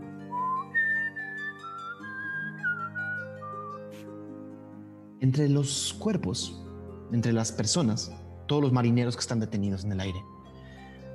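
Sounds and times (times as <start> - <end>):
person walking among people whistling a slow wavering tune: 0.2 - 3.9
speech: 5.2 - 10.3.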